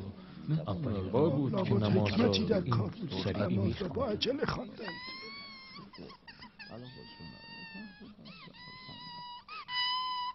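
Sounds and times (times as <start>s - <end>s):
speech: 0.5s - 5.2s, 6.0s - 8.9s
small child crying: 4.8s - 10.3s.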